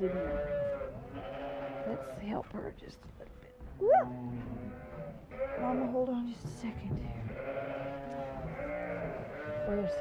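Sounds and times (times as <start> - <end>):
speech: 0.0 - 0.5, 1.9 - 8.1, 9.6 - 10.0
lamb bleating: 0.0 - 2.1, 4.6 - 6.0, 7.3 - 10.0.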